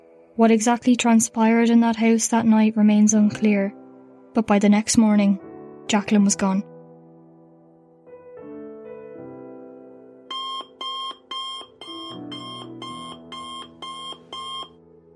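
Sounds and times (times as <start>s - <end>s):
speech: 0.4s - 3.8s, 4.4s - 6.7s
alarm clock with electronic melody and piercing beeps: 10.3s - 14.8s.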